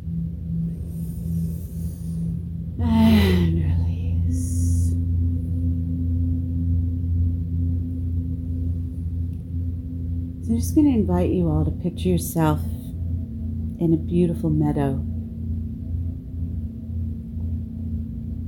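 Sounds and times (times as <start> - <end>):
steady low hum: 0.0 - 18.4
group taking a deep breath in and exhaling during a guided meditation: 0.7 - 2.6
speech: 10.6 - 12.8, 13.8 - 15.1.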